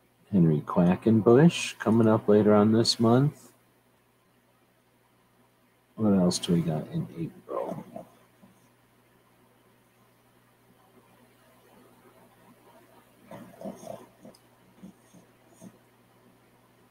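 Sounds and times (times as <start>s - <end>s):
quiet hiss: 0.0s - 16.8s
speech: 0.3s - 3.4s, 6.0s - 7.9s
puppy snorting and snuffling in its sleep: 7.5s - 8.1s, 13.3s - 15.8s.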